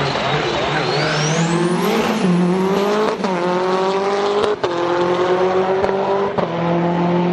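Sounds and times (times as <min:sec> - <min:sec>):
racing hatchback tires squealing: 0:00.0 - 0:03.7
five-door racing hatchback engine revving through gear changes: 0:00.0 - 0:07.3.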